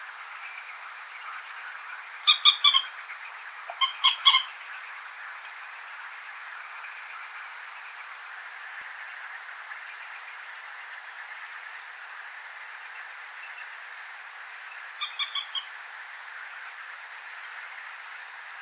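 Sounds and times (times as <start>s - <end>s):
common moorhen Gallinula chloropus: 0.6s - 5.0s, 14.7s - 15.8s.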